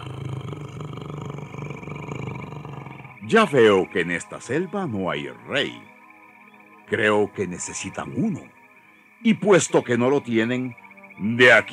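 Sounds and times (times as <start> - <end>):
tiger roaring: 0.0 - 3.2
speech: 3.3 - 5.9, 6.9 - 8.6, 9.2 - 11.7.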